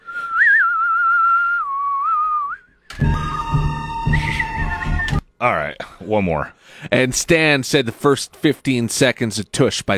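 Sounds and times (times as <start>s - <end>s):
person whistling a tune: 0.0s - 5.2s
speech: 5.4s - 9.9s.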